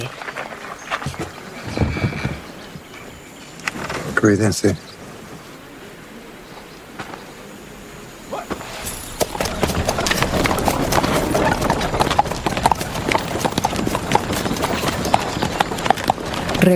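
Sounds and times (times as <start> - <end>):
horse-drawn carriage hooves clip-clopping: 0.0 - 3.1, 8.5 - 16.7
speech: 4.2 - 5.0
horse-drawn carriage rumbling as it drives away: 8.7 - 16.7.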